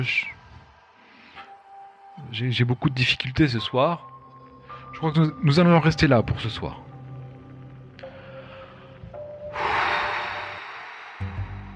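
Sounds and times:
speech: 0:00.0 - 0:00.4, 0:02.2 - 0:04.1, 0:04.9 - 0:06.8
woman letting out a long heavy exhale: 0:09.5 - 0:11.6.

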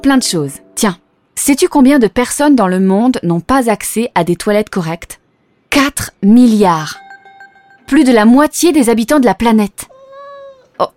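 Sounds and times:
speech: 0:00.0 - 0:07.0, 0:07.9 - 0:09.9, 0:10.8 - 0:10.9
cat meowing: 0:09.9 - 0:10.7.

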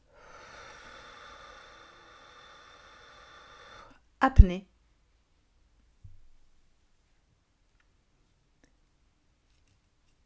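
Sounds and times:
long steady exhale of breath: 0:00.0 - 0:04.0
speech: 0:04.2 - 0:04.7.

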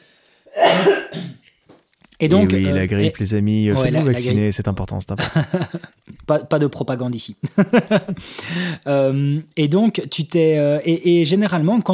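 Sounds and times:
harsh raspy cough: 0:00.5 - 0:01.4
speech: 0:02.2 - 0:11.9
laughter: 0:05.1 - 0:06.0, 0:07.4 - 0:08.6
throaty breath: 0:08.1 - 0:08.9.

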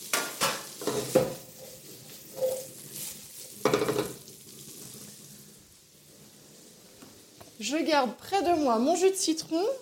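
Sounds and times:
butter foaming and sizzling in a frying pan as pears fry: 0:00.0 - 0:09.8
speech: 0:07.7 - 0:09.8.

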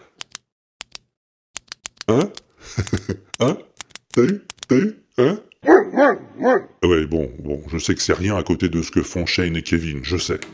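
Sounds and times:
pen clicking: 0:00.0 - 0:04.7
speech: 0:02.1 - 0:10.5
laughter: 0:02.6 - 0:03.5.

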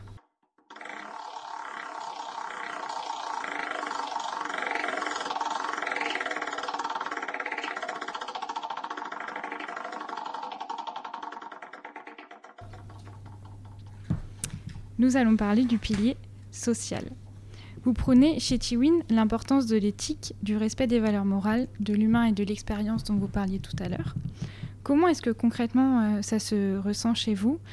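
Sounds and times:
spinning prize wheel ticking: 0:00.0 - 0:13.8
speech: 0:15.0 - 0:17.2, 0:17.8 - 0:27.7.

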